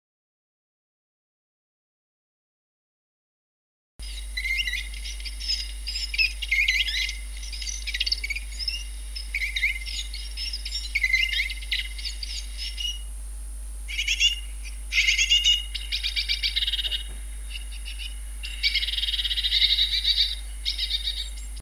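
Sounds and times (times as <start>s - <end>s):
finch calling: 4.0s - 13.2s, 13.8s - 21.6s.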